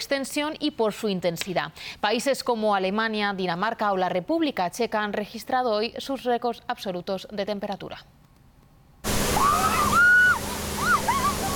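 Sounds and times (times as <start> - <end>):
speech: 0.0 - 8.2
police water cannon spraying water: 9.0 - 11.5
high sliding whoops or squeals: 9.1 - 11.5.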